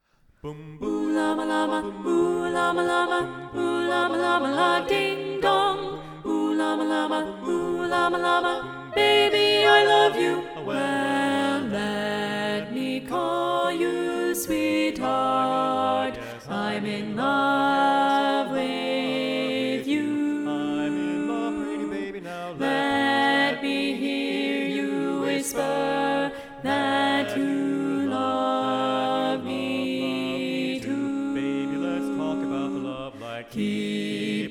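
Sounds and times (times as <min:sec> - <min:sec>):
SATB choir singing: 0:00.4 - 0:34.5.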